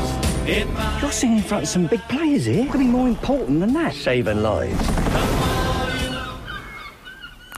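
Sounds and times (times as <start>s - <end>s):
speech: 0.5s - 5.5s
seagulls calling: 5.3s - 7.5s.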